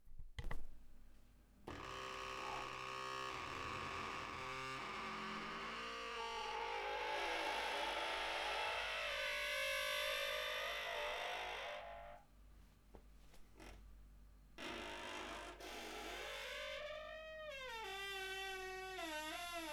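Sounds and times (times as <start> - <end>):
door creaking: 1.7 - 12.2, 14.6 - 19.7.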